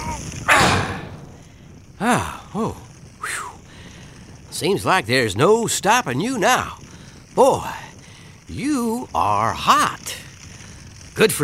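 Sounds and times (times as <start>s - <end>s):
door pushed shut with a thud: 0.5s - 1.4s
speech: 2.0s - 2.9s, 4.6s - 6.8s, 7.4s - 7.8s, 8.5s - 10.2s, 11.2s - 11.4s.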